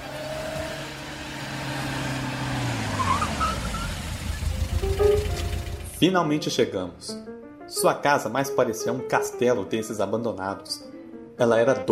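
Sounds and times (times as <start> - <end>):
car engine humming while driving: 0.0 - 6.0
rumbling road noise: 0.0 - 6.0
speech: 6.0 - 11.8.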